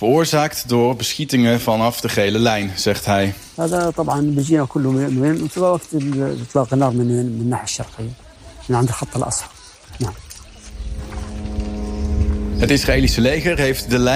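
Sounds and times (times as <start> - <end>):
speech: 0.0 - 10.2, 12.6 - 14.1
military drones buzzing overhead: 10.6 - 14.1.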